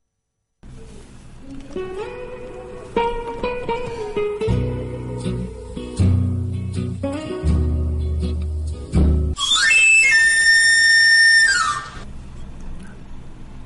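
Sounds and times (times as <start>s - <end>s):
music with deep bass: 4.1s - 9.4s
knife-grinder's pan pipe whistle: 9.4s - 12.1s.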